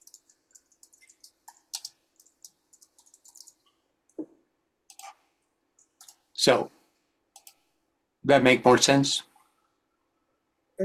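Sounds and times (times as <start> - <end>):
typing on a computer keyboard: 0.0 - 3.7, 4.9 - 5.2, 5.8 - 6.3, 7.3 - 7.7
speech: 6.4 - 6.8, 8.3 - 9.3.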